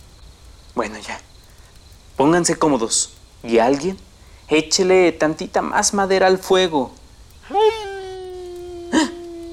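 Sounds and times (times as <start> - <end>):
speech: 0.8 - 1.3, 2.2 - 7.0
animal howling: 7.4 - 9.5.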